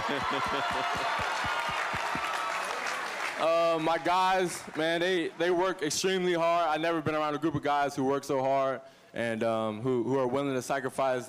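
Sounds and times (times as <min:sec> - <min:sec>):
crowd applause: 0:00.0 - 0:06.0
speech: 0:00.1 - 0:01.9, 0:03.4 - 0:11.2.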